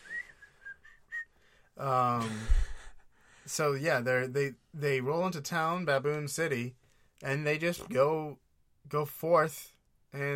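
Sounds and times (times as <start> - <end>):
person whistling high chirping notes imitating a mole rat: 0.0 - 1.3
speech: 1.8 - 2.6, 3.5 - 10.3.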